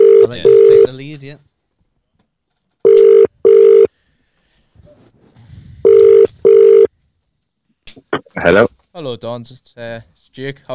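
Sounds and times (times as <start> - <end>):
phone ringback tone heard through a handset: 0.0 - 0.9, 2.8 - 3.9, 5.8 - 6.9
speech: 1.3 - 1.5, 8.4 - 10.7.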